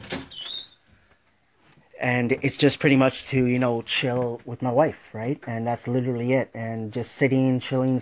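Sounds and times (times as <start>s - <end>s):
high thin squeak of metal as a person locks the door: 0.0s - 0.8s
speech: 2.0s - 8.0s.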